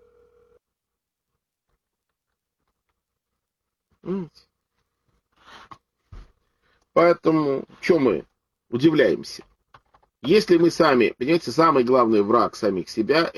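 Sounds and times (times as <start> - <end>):
brief electronic telephone tone: 0.0 - 0.6
sigh: 4.0 - 4.5
speech: 4.0 - 4.5, 7.0 - 9.5, 10.2 - 13.3.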